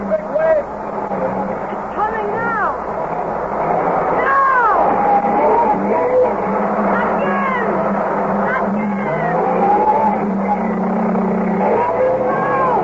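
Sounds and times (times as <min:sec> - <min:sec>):
car engine revving hard: 0:00.0 - 0:12.8
car wheels spinning in beach sand: 0:00.0 - 0:12.8
excited voices shouting loudly: 0:04.1 - 0:12.8.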